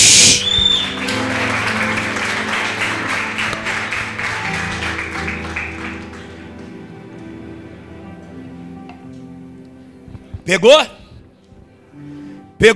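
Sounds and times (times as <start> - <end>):
sharp high whistle: 0.0 - 1.2
crowd applauding: 0.0 - 7.4
speech: 10.5 - 11.0.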